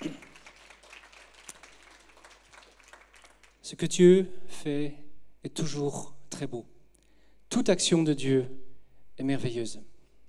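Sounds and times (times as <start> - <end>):
crowd clapping: 0.0 - 3.6
speech: 3.7 - 6.7, 7.5 - 8.6, 9.2 - 9.9.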